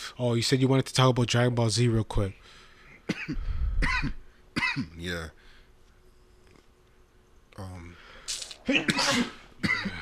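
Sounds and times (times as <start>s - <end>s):
speech: 0.2s - 5.4s, 7.6s - 8.0s, 8.7s - 10.0s
person sneezing: 8.3s - 10.0s.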